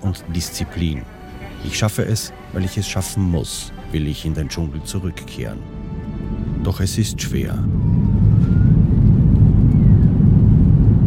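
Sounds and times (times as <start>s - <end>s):
airplane engines roaring as the plane taxis and takes off: 0.0s - 11.0s
speech: 0.1s - 5.8s, 6.6s - 8.1s
faint rising airplane engine whine: 5.6s - 11.0s.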